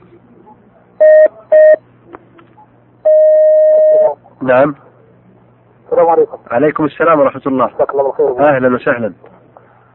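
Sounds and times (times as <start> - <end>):
faint noise: 0.0 - 9.9
short electronic telephone tones: 3.1 - 4.2
speech: 4.4 - 4.9, 5.9 - 9.4.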